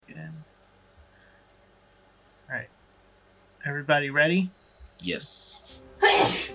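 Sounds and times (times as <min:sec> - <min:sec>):
speech: 0:02.5 - 0:02.8, 0:03.7 - 0:06.5
person sneezing: 0:06.0 - 0:06.5.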